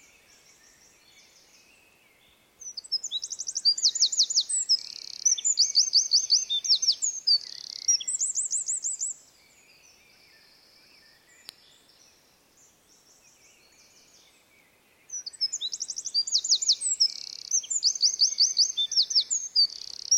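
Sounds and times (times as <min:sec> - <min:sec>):
Eurasian wren Troglodytes troglodytes song: 0:00.0 - 0:20.1
faint click: 0:11.4 - 0:11.7.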